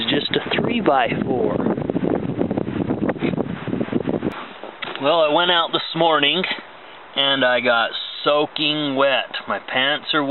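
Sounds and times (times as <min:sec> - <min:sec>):
strong wind buffeting a microphone outdoors: 0:00.0 - 0:06.7
speech: 0:00.8 - 0:01.7, 0:05.0 - 0:06.6, 0:07.2 - 0:10.2.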